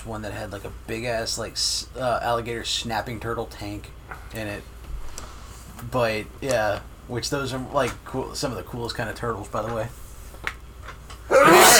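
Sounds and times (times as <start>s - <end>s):
speech: 0.0s - 4.8s, 5.8s - 10.0s
quick sharp inhales: 5.2s - 5.8s
loud sneeze: 11.3s - 11.7s.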